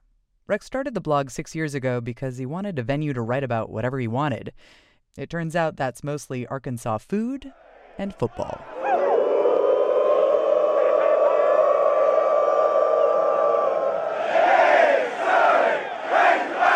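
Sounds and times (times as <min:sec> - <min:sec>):
speech: 0:00.5 - 0:08.8
stadium football crowd woo in unison: 0:07.7 - 0:16.7.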